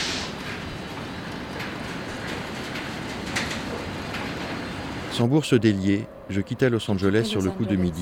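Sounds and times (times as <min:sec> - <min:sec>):
freight train with wagons carrying scrap and tankers rolling on rails: 0:00.0 - 0:08.0
speech: 0:05.2 - 0:08.0.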